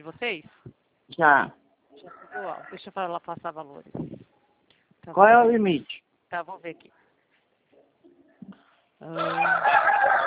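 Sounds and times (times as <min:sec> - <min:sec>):
speech: 0:00.0 - 0:01.6, 0:02.4 - 0:04.2, 0:05.0 - 0:07.0, 0:09.0 - 0:10.2
rooster crowing: 0:09.2 - 0:10.2.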